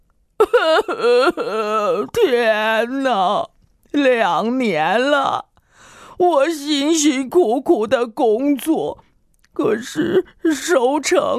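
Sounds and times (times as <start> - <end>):
person wailing loudly in grief over a lost harvest: 0.4 - 2.4
speech: 1.0 - 5.5, 6.2 - 9.0, 9.6 - 11.3.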